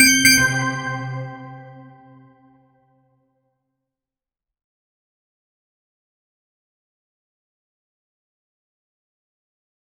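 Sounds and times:
achievement reward sound: 0:00.0 - 0:02.2.

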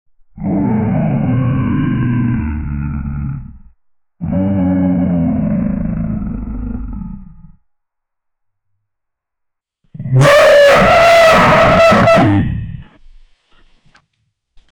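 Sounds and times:
large dog mutating into monsters: 0:00.4 - 0:07.6, 0:10.0 - 0:13.0.

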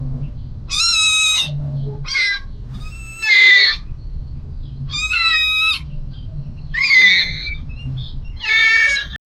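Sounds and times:
parrot: 0:00.7 - 0:03.9, 0:04.9 - 0:09.2.

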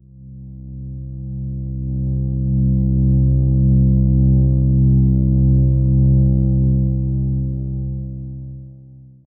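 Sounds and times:
low synthesizer drone: 0:00.0 - 0:09.0.

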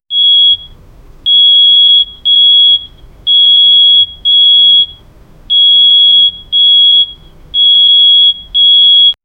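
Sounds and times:
alarm: 0:00.1 - 0:09.2.

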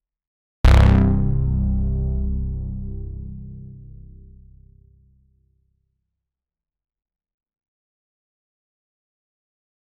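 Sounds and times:
synthwave outrun bass pluck: 0:00.6 - 0:05.2.

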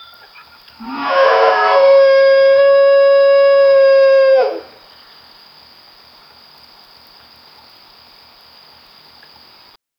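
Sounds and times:
animal call: 0:00.8 - 0:04.8
buffalo groaning: 0:00.8 - 0:04.8.

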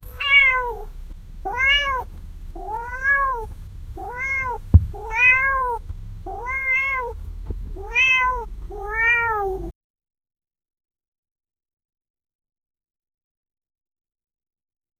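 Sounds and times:
cat being taken along: 0:00.1 - 0:07.2, 0:07.8 - 0:09.7.

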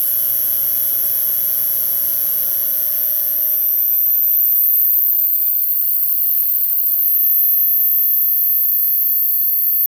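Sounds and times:
electricity buzz: 0:00.0 - 0:07.1.

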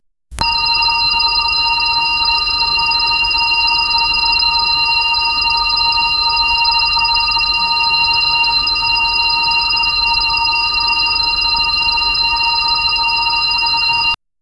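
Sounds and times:
vintage landline phone: 0:00.4 - 0:14.2.

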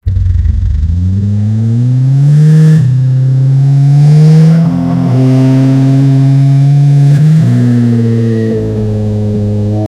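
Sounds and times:
sports car revving engine: 0:00.0 - 0:09.9.

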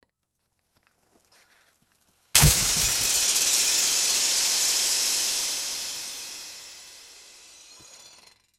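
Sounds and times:
vehicle tires deflating: 0:02.4 - 0:08.2.

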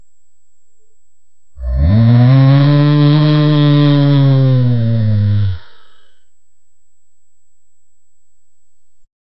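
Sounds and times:
tiger roaring: 0:01.6 - 0:05.9.

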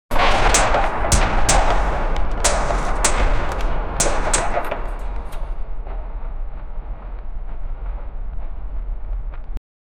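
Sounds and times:
epic battle ambience: 0:00.1 - 0:09.6
swords clashing in epic battle: 0:00.2 - 0:05.2.

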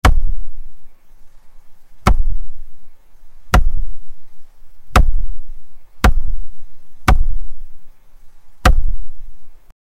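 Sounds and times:
single ball kick: 0:02.0 - 0:02.5, 0:03.5 - 0:03.9, 0:04.9 - 0:05.3, 0:06.0 - 0:06.4, 0:07.0 - 0:07.5, 0:08.6 - 0:09.1.

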